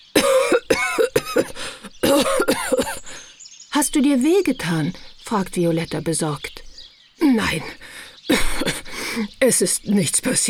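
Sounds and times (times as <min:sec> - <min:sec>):
grandfather coughing hard coming out of a smoke-filled wooden shed: 0:00.2 - 0:03.2, 0:08.3 - 0:09.2
speech: 0:03.9 - 0:06.5, 0:07.2 - 0:07.8, 0:09.2 - 0:10.4.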